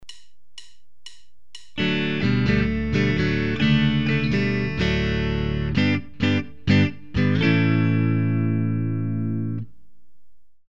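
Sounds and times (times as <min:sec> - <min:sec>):
typical guitar phrase in open-D tuning: 0:01.8 - 0:09.7.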